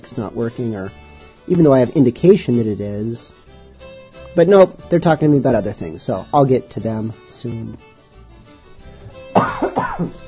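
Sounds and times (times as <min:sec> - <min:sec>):
speech: 0:00.0 - 0:03.4, 0:04.4 - 0:07.9, 0:09.4 - 0:10.2
person coughing harshly away from microphone: 0:09.4 - 0:10.2.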